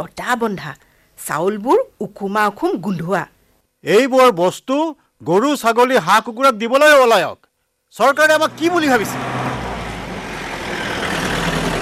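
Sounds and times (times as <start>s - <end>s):
speech: 0.0s - 9.4s
several road vehicles approaching on a village road: 8.3s - 11.8s.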